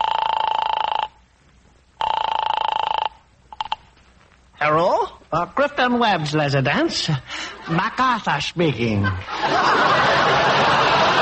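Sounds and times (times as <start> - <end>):
telephone ringing after a number is dialed: 0.0 - 1.2, 2.0 - 4.0
speech: 4.6 - 10.8
laughter: 7.3 - 8.2, 8.8 - 11.1.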